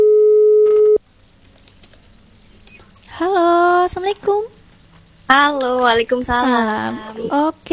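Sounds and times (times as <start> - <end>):
telephone ringback tone during an outgoing call: 0.0 - 1.0
speech: 3.9 - 4.6, 5.3 - 7.7.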